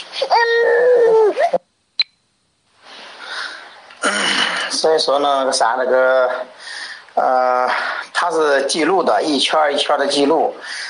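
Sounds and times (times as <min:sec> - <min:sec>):
child crying: 0:00.2 - 0:01.6
speech: 0:00.2 - 0:01.6, 0:04.8 - 0:06.6, 0:07.2 - 0:10.8
soft breathy noise: 0:02.8 - 0:04.0, 0:06.3 - 0:08.2, 0:10.6 - 0:10.8.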